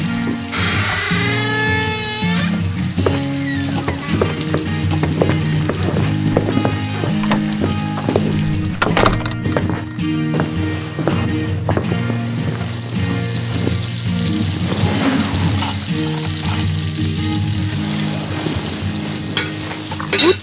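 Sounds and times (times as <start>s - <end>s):
bacon sizzling in a frying pan: 0.0s - 8.6s, 9.4s - 20.4s.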